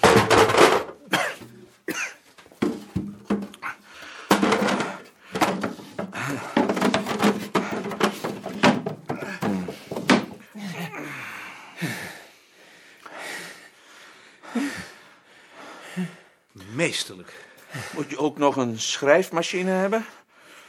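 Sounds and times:
heavy wooden cabinet being moved beside a desk with knocks and thuds: 0:00.0 - 0:01.1, 0:02.5 - 0:10.5
speech: 0:16.8 - 0:20.2.

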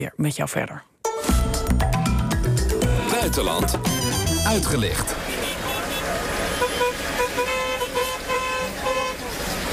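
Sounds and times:
speech: 0:00.0 - 0:01.9, 0:03.3 - 0:05.2
busy city traffic engine and road rumble: 0:02.6 - 0:09.7
car horns honking: 0:03.8 - 0:09.7.

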